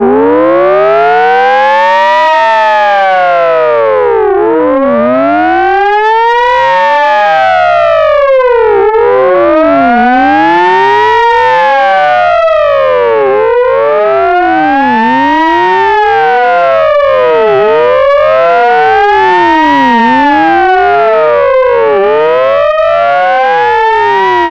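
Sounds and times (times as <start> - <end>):
fire truck piercer siren: 0.0 - 24.4.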